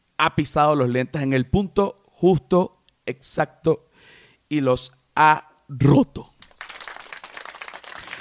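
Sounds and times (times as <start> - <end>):
speech: 0.2 - 3.9, 4.5 - 6.3
audience applause: 6.5 - 8.1.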